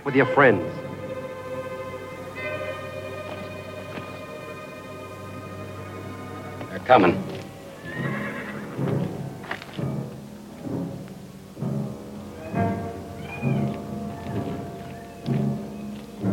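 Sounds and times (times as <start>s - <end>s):
speech: 0.0s - 0.8s, 6.9s - 7.3s
sharp hoof clops: 0.7s - 16.3s
horses whinnying and snorting: 5.7s - 9.6s.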